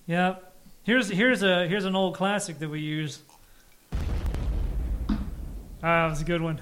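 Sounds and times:
speech: 0.1 - 3.4, 5.8 - 6.6
loud explosion sound effect: 3.9 - 6.4
heavy low-end rumble with crackling debris: 3.9 - 6.6.

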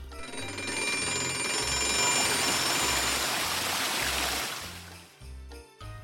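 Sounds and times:
alarm clock ringing: 0.0 - 4.9
continuous rush of running water: 1.7 - 5.1.

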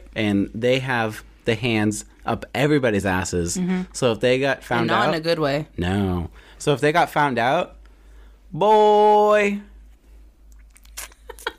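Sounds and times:
low steady hum: 0.0 - 11.5
speech: 0.2 - 7.8, 8.5 - 9.7
person sipping a drink: 10.5 - 11.2.

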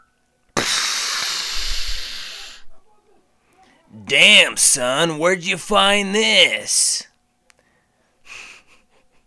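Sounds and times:
loud hissing burst with a low rumble: 0.6 - 2.7
voice imitating a falling missile whistle: 0.6 - 2.7
speech: 4.1 - 7.1.

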